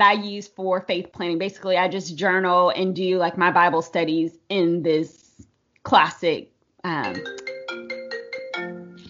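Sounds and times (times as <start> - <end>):
speech: 0.0 - 5.2, 5.8 - 7.4
phone ringtone electronic melody: 7.0 - 9.0.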